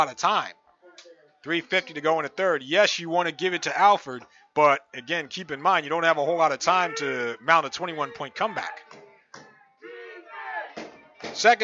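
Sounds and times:
speech: 0.0 - 0.6, 1.4 - 9.0, 11.4 - 11.6
sparse crowd chanting at a football game: 6.6 - 11.2.

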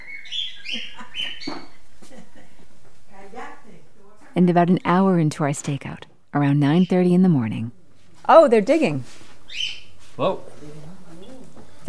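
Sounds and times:
pet bird chirping and chattering in a house: 0.0 - 1.8, 6.4 - 7.4, 9.5 - 9.9
speech: 4.4 - 10.9.

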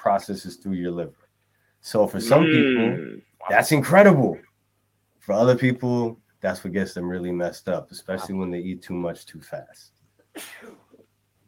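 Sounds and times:
speech: 0.2 - 4.5, 5.2 - 10.8
person sneezing: 2.2 - 3.1, 10.4 - 10.9.

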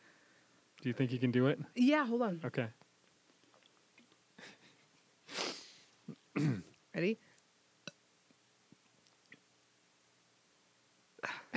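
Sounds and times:
speech: 0.8 - 2.8, 6.4 - 7.3
small short burp: 5.4 - 6.8.

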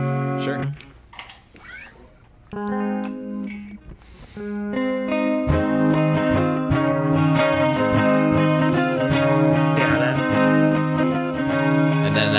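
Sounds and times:
clean electric guitar played through a chorus pedal: 0.0 - 1.0, 2.5 - 12.3
speech: 0.4 - 0.9.

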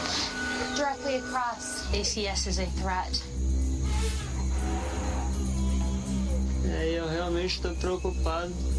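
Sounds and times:
night insects: 0.0 - 8.7
speech: 1.1 - 4.3, 6.6 - 8.7
large herd of elephants approaching a boma: 3.4 - 6.7
loud wavering elephant calls: 3.8 - 6.6.

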